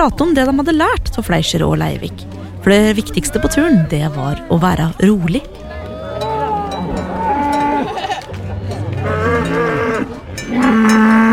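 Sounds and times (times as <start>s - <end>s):
speech: 0.0s - 5.7s
herd of cows mooing while driven down a valley road: 1.6s - 11.3s
laughter: 2.8s - 9.4s
faint bell clanking: 6.1s - 11.3s.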